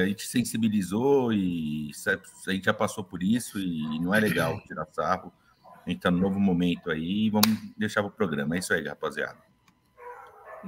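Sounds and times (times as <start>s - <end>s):
speech: 0.0s - 9.5s
dog barking: 5.6s - 6.4s, 9.4s - 10.6s.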